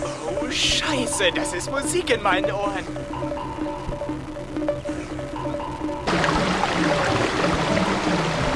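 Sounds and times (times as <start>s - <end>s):
faint tonal hum: 0.0s - 8.5s
speech: 0.5s - 3.5s
water gushing from a burst pipe: 6.1s - 8.5s.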